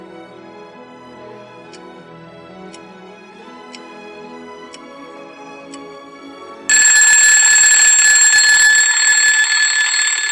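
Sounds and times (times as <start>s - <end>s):
loud shrill alarm clock ringing: 6.7s - 10.3s.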